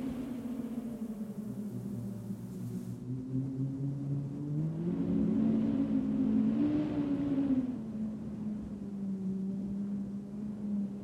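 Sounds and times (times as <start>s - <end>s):
wind at a window: 0.0s - 11.0s.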